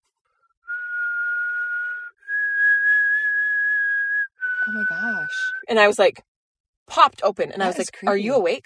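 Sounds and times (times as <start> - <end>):
person whistling a tune: 0.5 - 5.7
speech: 4.7 - 6.3, 6.9 - 8.6.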